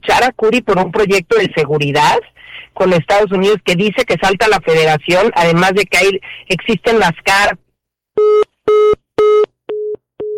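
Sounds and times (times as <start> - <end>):
speech: 0.2 - 7.6, 8.2 - 9.4
telephone busy tone after a call dropped: 8.2 - 10.3.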